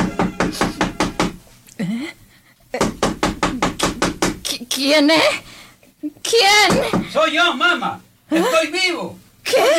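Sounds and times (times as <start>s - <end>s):
loud rapid knocking on a door: 0.0s - 1.4s, 2.8s - 4.5s, 6.6s - 7.2s
speech: 1.8s - 3.2s, 4.8s - 9.7s.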